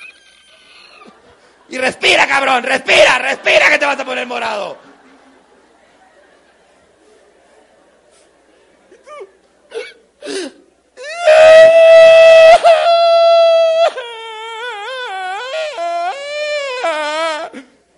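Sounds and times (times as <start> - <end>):
laughter: 0.5 - 10.1
speech: 1.7 - 4.8
voice imitating a child's crying: 11.0 - 17.7.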